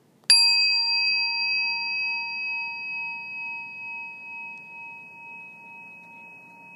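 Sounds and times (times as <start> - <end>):
single bell strike with bright sustained metallic tone: 0.3 - 6.7.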